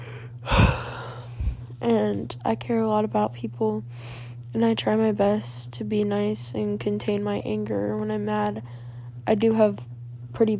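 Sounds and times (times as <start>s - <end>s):
faint steady hum: 0.0s - 10.5s
person yawning: 0.5s - 1.2s
speech: 2.1s - 10.5s.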